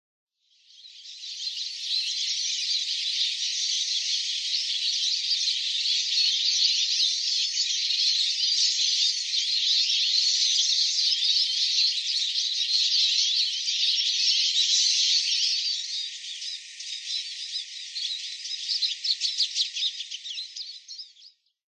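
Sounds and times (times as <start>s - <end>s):
Eurasian siskin calling in Hitachi: 0.8s - 21.4s.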